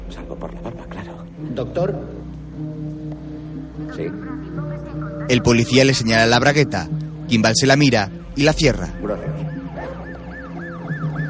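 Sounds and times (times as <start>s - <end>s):
speech: 0.1s - 9.4s
ambulance siren wailing: 8.3s - 11.2s.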